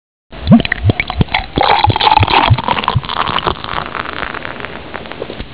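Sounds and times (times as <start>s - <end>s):
drinking: 0.5s - 4.4s.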